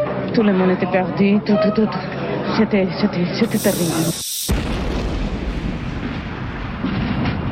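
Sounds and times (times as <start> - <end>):
speech: 0.4 - 4.6
violent explosion at a seaside campsite: 3.5 - 7.5.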